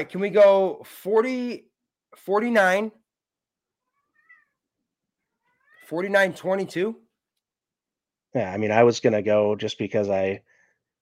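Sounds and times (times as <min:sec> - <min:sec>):
speech: 0:00.0 - 0:03.0, 0:05.9 - 0:07.0, 0:08.3 - 0:11.0
pet cat meowing: 0:03.8 - 0:06.6.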